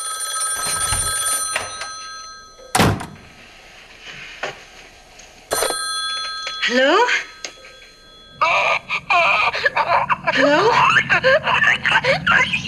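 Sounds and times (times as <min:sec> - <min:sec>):
old-fashioned telephone bell ringing: 0:00.0 - 0:02.7, 0:05.5 - 0:09.2
speech: 0:06.7 - 0:07.3, 0:09.9 - 0:12.6
laughter: 0:08.4 - 0:12.6.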